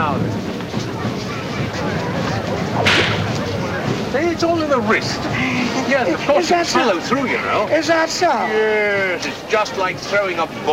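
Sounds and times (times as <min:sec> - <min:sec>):
crowd murmur: 0:00.0 - 0:10.7
whip cracking: 0:02.8 - 0:03.4
speech: 0:04.4 - 0:10.7.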